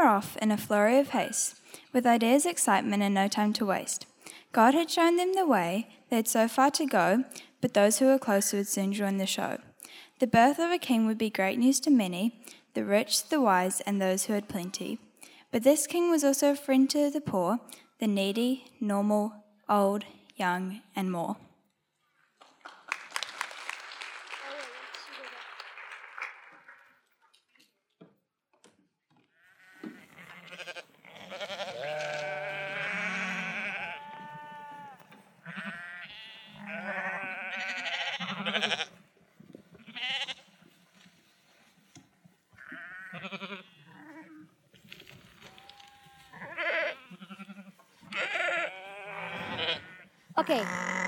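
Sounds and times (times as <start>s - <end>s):
speech: 0.2s - 21.4s
flock of sheep bleating: 29.4s - 38.9s, 39.8s - 40.4s, 42.6s - 44.4s, 45.5s - 51.0s.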